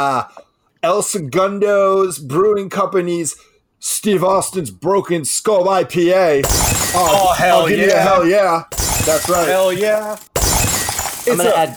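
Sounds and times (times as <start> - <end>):
speech: 0.0 - 10.4, 11.2 - 11.7
glass debris rattling: 6.4 - 8.0, 8.7 - 11.7
glass shattering: 6.4 - 8.1, 8.7 - 11.7.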